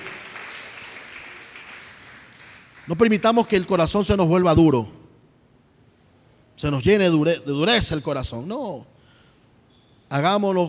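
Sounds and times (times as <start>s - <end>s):
congregation clapping during a church service: 0.0s - 3.8s
speech: 2.9s - 5.0s, 6.6s - 8.9s, 10.1s - 10.6s.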